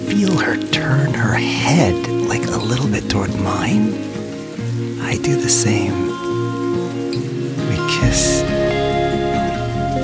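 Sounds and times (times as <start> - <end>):
steady rain falling: 0.0 - 10.0
speech: 0.2 - 4.1, 5.0 - 6.1, 7.9 - 8.6
sustained musical tones: 7.6 - 10.0.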